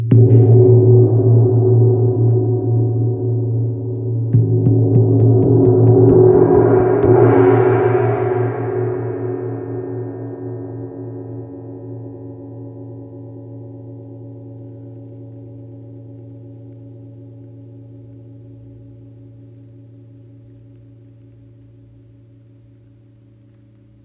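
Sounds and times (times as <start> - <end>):
60cm wind gong tuned to A sharp: 0.1 - 17.2.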